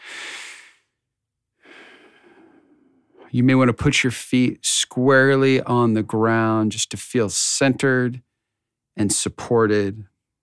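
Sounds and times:
deep breaths during a guided prayer meditation: 0:00.0 - 0:01.0, 0:01.6 - 0:03.3
speech: 0:03.3 - 0:08.3, 0:09.0 - 0:10.1.

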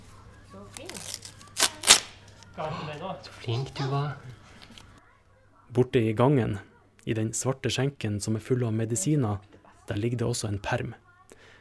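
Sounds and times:
tape and paper ripping as a taped advent calendar package is torn open: 0:00.7 - 0:02.4
speech: 0:02.6 - 0:04.4, 0:05.7 - 0:11.0.

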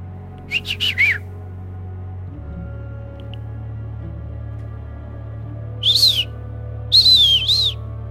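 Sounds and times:
low steady hum: 0:00.0 - 0:08.1
person whistling short high notes as a signal call: 0:00.5 - 0:01.2, 0:05.8 - 0:06.3, 0:06.9 - 0:07.8.

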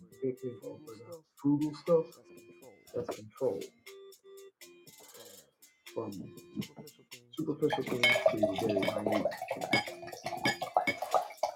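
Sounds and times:
speech: 0:00.2 - 0:03.8, 0:06.0 - 0:10.5
glass clinks: 0:07.7 - 0:11.1
wine pouring into a glass: 0:07.7 - 0:11.5.

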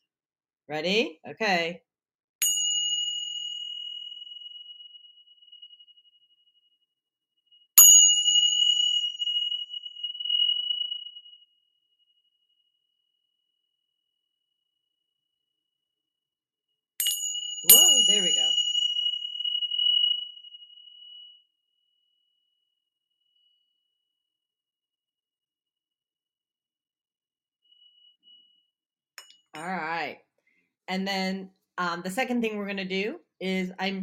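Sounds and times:
speech: 0:00.7 - 0:01.9, 0:30.9 - 0:34.0
small Tibetan hand bells chiming: 0:02.4 - 0:04.9, 0:07.8 - 0:11.3, 0:17.0 - 0:20.5.

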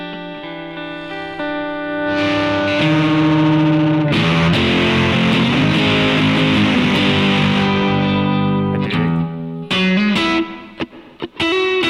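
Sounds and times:
electric guitar played through an overdrive pedal with volume knob rolled: 0:00.0 - 0:11.8.

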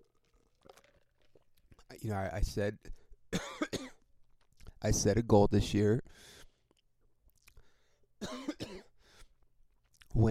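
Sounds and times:
speech: 0:02.0 - 0:03.4, 0:04.8 - 0:06.4
harsh coughs: 0:03.3 - 0:04.0, 0:08.2 - 0:09.0.

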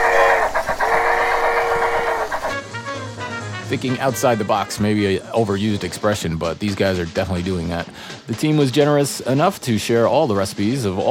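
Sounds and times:
copper train set rolling on rails around a bar: 0:00.0 - 0:02.6
speech: 0:03.7 - 0:11.0.

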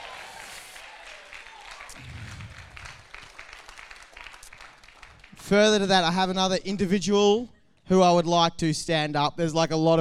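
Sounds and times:
room full of people applauding: 0:00.0 - 0:05.4
speech: 0:05.5 - 0:09.9.

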